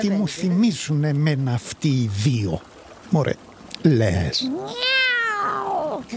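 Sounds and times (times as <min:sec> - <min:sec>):
speech: 0:00.0 - 0:05.0
person imitating a cat meowing: 0:04.4 - 0:06.1.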